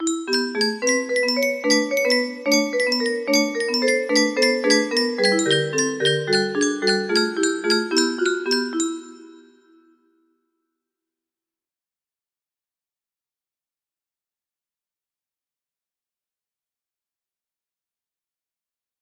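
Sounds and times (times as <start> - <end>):
music box playing: 0.0 - 9.7.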